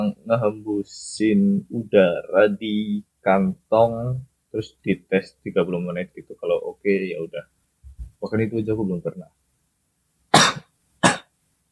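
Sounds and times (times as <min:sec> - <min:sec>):
speech: 0:00.0 - 0:07.6, 0:08.2 - 0:09.4
person coughing sharply: 0:10.4 - 0:11.3.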